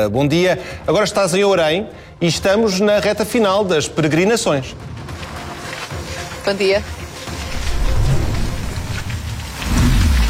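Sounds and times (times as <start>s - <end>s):
speech: 0.0s - 5.2s, 6.4s - 7.0s
rain falling outdoors spattering on surfaces: 2.4s - 10.2s.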